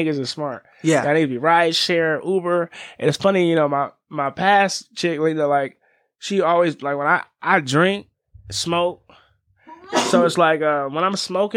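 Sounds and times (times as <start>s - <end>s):
speech: 0.0s - 9.1s, 9.9s - 11.5s
loud sneeze: 9.7s - 10.4s.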